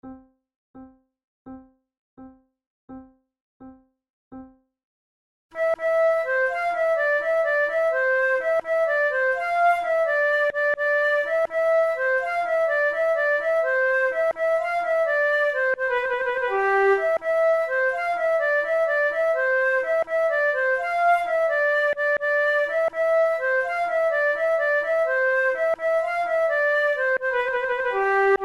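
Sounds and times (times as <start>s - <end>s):
flute: 5.5s - 28.4s
fanfare: 27.0s - 28.4s.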